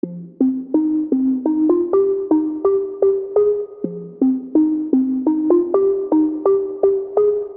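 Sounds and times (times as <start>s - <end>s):
synth loop in F minor: 0.0s - 7.5s.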